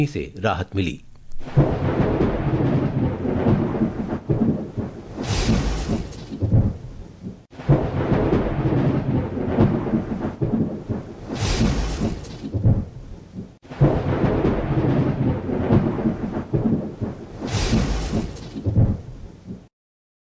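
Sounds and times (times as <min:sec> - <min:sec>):
speech: 0:00.0 - 0:01.7
steady heavy rain over Delhi and the national capital region: 0:01.4 - 0:06.7, 0:07.5 - 0:12.8, 0:13.6 - 0:18.9
deep rolling thunder over Delhi and the national capital region: 0:01.4 - 0:19.3.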